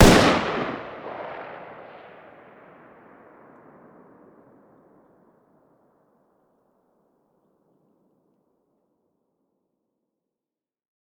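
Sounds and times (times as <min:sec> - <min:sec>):
distant 5.56x45 machine gun fire outdoors: 0:00.0 - 0:02.1.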